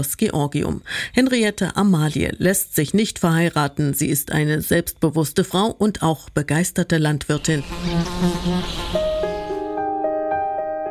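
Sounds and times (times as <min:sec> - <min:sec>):
speech: 0:00.0 - 0:09.0
bees buzzing: 0:07.4 - 0:09.8.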